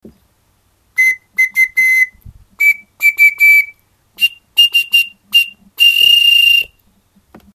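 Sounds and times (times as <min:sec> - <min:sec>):
straw whistle in G: 0:01.0 - 0:06.8.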